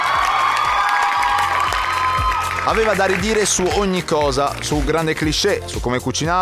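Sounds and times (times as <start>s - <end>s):
crowd cheering and whoops: 0.0s - 3.2s
crowd applause: 0.0s - 5.4s
speech: 2.6s - 6.4s.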